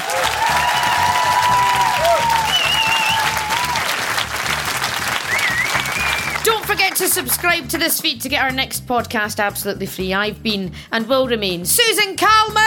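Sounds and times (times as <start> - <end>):
whoops and cheers: 0.0 - 4.0
crowd applauding: 0.0 - 7.4
speech: 7.0 - 12.6.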